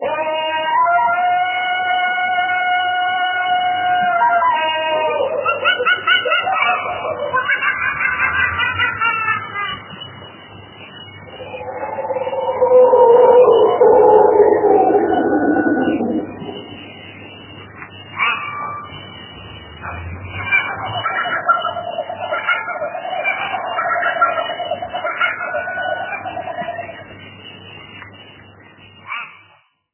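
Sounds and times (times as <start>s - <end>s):
jungle ambience: 0.0s - 29.4s.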